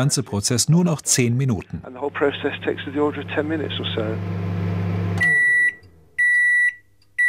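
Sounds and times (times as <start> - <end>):
speech: 0.0 - 4.5
kitchen microwave oven humming while drying material: 1.9 - 6.6
kitchen microwave oven electronic beeps: 3.2 - 7.2.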